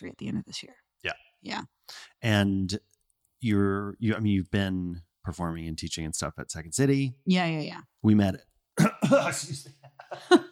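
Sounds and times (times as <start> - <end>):
speech: 0.0 - 10.5
person clearing throat into the mic: 8.8 - 9.6
laughter: 8.8 - 10.5.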